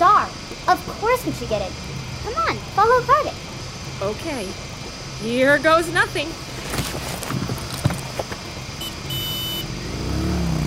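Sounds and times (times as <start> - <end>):
vehicle engine rumbling through busy traffic: 0.0 - 10.6
speech: 0.6 - 6.4
scattered clatters and knocks: 6.7 - 8.6
brief high horn-like tone: 8.8 - 9.7.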